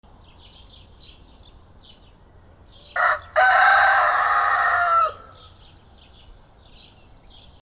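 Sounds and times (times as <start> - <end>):
rooster: 2.8 - 5.5.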